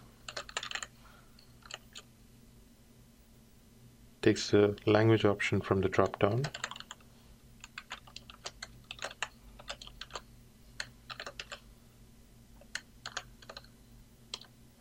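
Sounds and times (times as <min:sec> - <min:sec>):
low steady hum: 0:00.0 - 0:14.7
computer keyboard typing into an app's input text box: 0:00.2 - 0:00.9, 0:01.6 - 0:02.1, 0:06.0 - 0:07.0, 0:07.6 - 0:10.2, 0:10.8 - 0:11.6, 0:12.6 - 0:13.7, 0:14.3 - 0:14.5
speech: 0:04.3 - 0:06.7.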